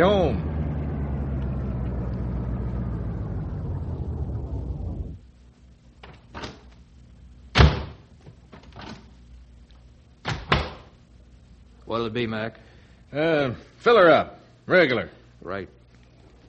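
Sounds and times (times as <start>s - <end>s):
speech: 0.0s - 0.5s, 12.0s - 15.8s
car engine hum pulling into a gas station: 0.0s - 5.3s.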